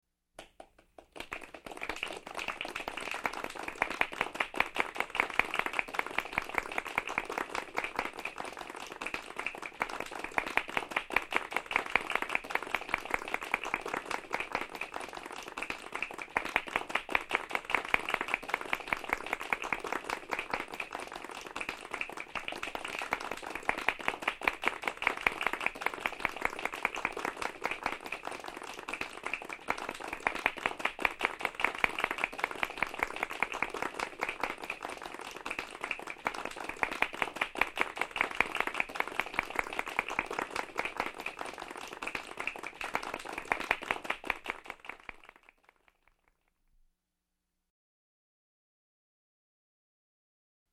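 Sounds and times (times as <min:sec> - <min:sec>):
polite applause from a medium group: 0:00.4 - 0:46.4.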